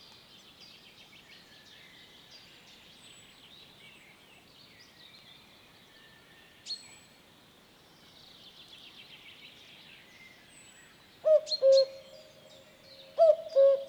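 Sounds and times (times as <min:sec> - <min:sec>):
common cuckoo cu-coo calls: 0:11.3 - 0:12.3, 0:13.0 - 0:13.8.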